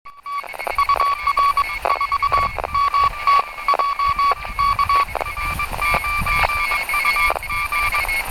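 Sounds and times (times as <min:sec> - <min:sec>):
radio pileup received on DSB: 0:00.1 - 0:08.2.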